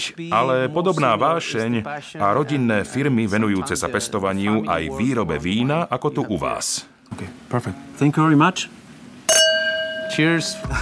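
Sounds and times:
speech: 0.0s - 8.8s, 10.1s - 10.7s
wine glasses clinking in a toast to Slovak wines: 9.3s - 10.7s.

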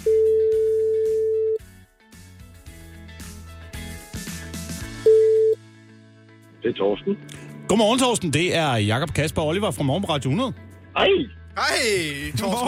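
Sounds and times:
telephone ringback tone while an outgoing call connects: 0.0s - 1.6s, 5.0s - 5.6s
loud backing music bed: 0.0s - 12.6s
speech: 6.7s - 12.6s.

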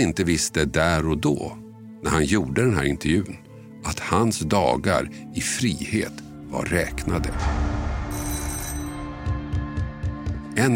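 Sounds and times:
speech: 0.0s - 7.7s, 10.6s - 10.7s
low hum: 6.6s - 10.3s
metallic doorbell trill: 8.1s - 9.1s.

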